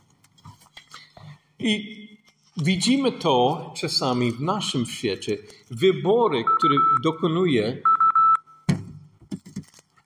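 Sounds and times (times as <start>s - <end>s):
speech: 1.6s - 2.0s, 2.6s - 7.9s
timer alarm beep signalling time to finish: 6.4s - 7.2s, 7.8s - 8.7s.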